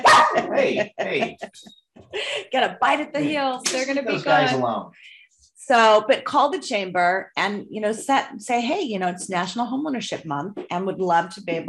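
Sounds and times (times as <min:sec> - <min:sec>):
small dog barking and yapping excitedly: 0:00.0 - 0:00.5
laughter: 0:00.0 - 0:04.6
speech: 0:00.6 - 0:11.6.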